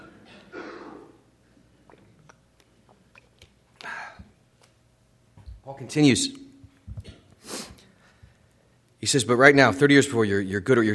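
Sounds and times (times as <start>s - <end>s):
person sipping water: 1.8s - 4.4s
soft wet clicks and swallows: 1.8s - 4.8s
speech: 5.7s - 6.4s, 9.0s - 10.9s.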